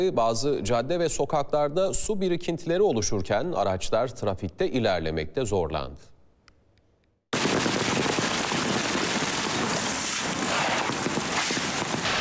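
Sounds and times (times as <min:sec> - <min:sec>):
speech: 0:00.0 - 0:06.1
hail pounding roads and vehicles: 0:07.4 - 0:12.1.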